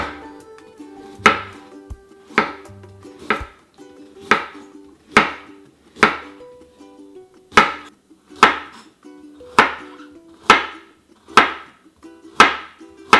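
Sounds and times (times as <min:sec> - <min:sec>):
knife slicing peeled carrots into thin rounds on a board: 0:01.2 - 0:01.5, 0:02.3 - 0:02.6, 0:03.2 - 0:03.6, 0:04.3 - 0:04.6, 0:05.2 - 0:06.3, 0:07.5 - 0:08.7, 0:09.6 - 0:09.8, 0:10.4 - 0:11.7, 0:12.4 - 0:13.1.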